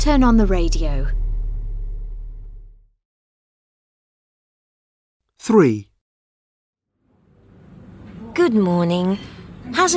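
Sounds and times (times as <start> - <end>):
speech: 0.0 - 1.2, 5.4 - 5.9, 8.4 - 9.9
car engine idling in slow city traffic at traffic lights: 0.0 - 2.8.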